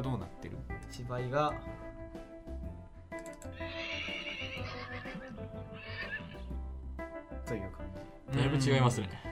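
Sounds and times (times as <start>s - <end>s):
speech: 0.0s - 1.8s, 8.4s - 9.3s
horse neighing: 3.5s - 6.5s.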